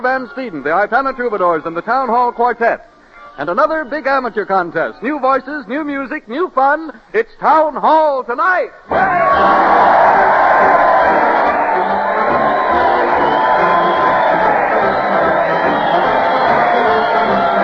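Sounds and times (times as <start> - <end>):
speech: 0.0 - 10.8
large crowd cheering and shouting at a parade: 8.9 - 17.6.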